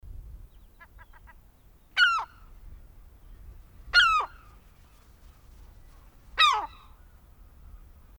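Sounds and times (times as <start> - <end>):
sharp steeply descending bird squawks: 0.7 - 1.4, 2.0 - 2.5, 3.9 - 4.5, 6.4 - 7.0.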